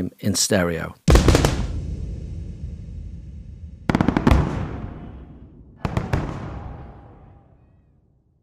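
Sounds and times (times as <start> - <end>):
speech: 0.0 - 1.1
explosion sound effects panned across stereo field: 1.1 - 8.0.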